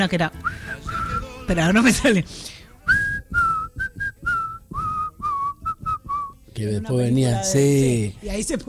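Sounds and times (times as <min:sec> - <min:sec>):
speech: 0:00.0 - 0:00.9, 0:01.5 - 0:02.6, 0:06.6 - 0:08.6
person whistling a film tune: 0:00.4 - 0:01.4, 0:02.9 - 0:06.4.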